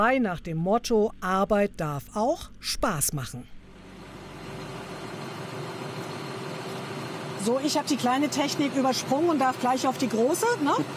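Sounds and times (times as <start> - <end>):
speech: 0.0 - 3.6, 7.4 - 10.9
tractor engine idling: 3.6 - 10.9.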